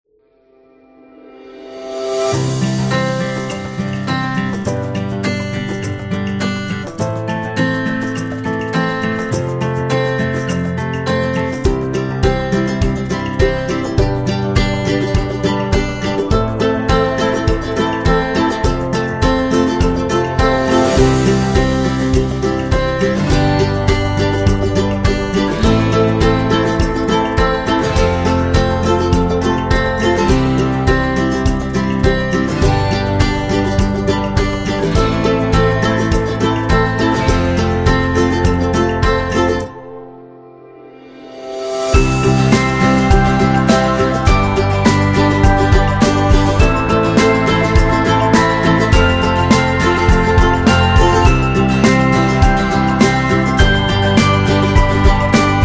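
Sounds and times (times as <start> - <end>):
corporate guitar music: 0.4 - 55.6.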